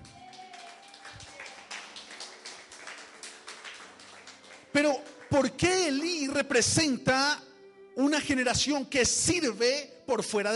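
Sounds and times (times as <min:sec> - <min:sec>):
audience applauding during a church sermon: 0:00.0 - 0:06.0
speech: 0:04.8 - 0:07.4, 0:08.0 - 0:10.5.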